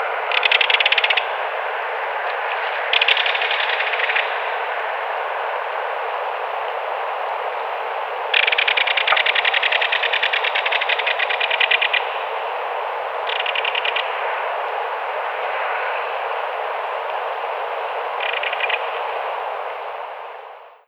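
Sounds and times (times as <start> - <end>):
belted kingfisher call: 0.0 - 20.4.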